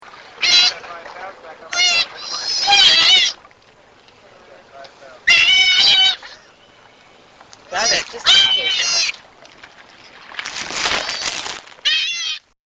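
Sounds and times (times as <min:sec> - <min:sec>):
sea otter pup: 0:00.4 - 0:00.8, 0:01.7 - 0:03.4, 0:05.2 - 0:06.6, 0:07.7 - 0:09.2, 0:10.9 - 0:12.5.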